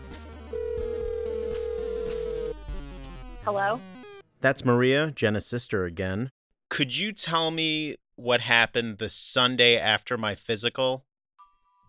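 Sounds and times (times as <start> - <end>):
telephone ringing with a steady electronic tone: 0.5 - 2.6
speech: 3.4 - 11.1.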